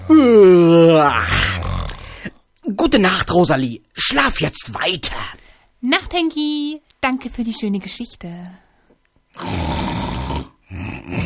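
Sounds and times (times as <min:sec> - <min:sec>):
voice imitating a snoring bear: 0:00.0 - 0:02.2, 0:09.3 - 0:11.2
speech: 0:02.8 - 0:08.6, 0:09.4 - 0:09.8.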